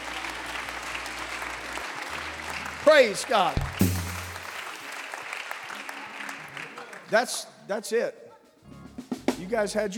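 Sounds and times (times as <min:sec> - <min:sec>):
congregation applauding: 0:00.0 - 0:07.4
speech: 0:02.8 - 0:04.0, 0:07.1 - 0:08.2, 0:09.5 - 0:09.9.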